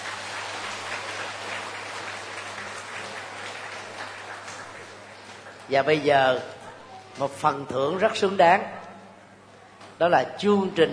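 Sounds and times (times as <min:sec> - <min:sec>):
Buddhist audience applauding to declare a shared vow in Vietnam: 0:00.0 - 0:06.0
low electrical hum: 0:00.0 - 0:10.9
speech: 0:05.7 - 0:06.6, 0:07.2 - 0:08.8, 0:10.0 - 0:10.9.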